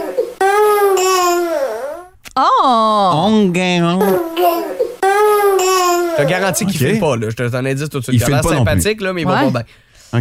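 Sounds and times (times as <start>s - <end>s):
baby crying loudly: 0.0s - 2.1s, 4.0s - 6.8s
speech: 2.4s - 4.8s, 6.2s - 10.1s.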